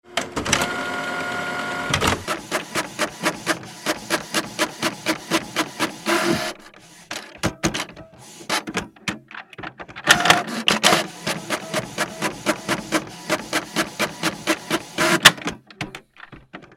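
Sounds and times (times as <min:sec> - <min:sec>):
Epson ET printer printing multiple pages: 0:00.1 - 0:16.7.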